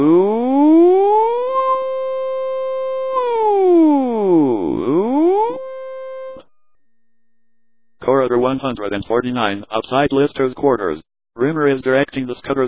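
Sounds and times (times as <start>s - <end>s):
blaring electronic siren alarm warbling: 0.0s - 7.9s
speech: 8.5s - 12.6s.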